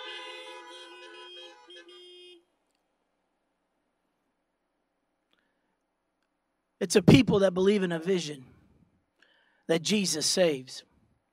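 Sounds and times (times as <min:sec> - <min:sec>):
car horns honking from a church service audience: 0:00.0 - 0:02.6
speech: 0:06.8 - 0:08.6, 0:09.7 - 0:10.9.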